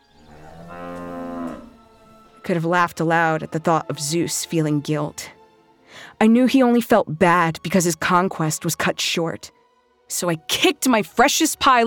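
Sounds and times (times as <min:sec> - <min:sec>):
cow mooing: 0:00.2 - 0:02.0
speech: 0:02.5 - 0:11.8.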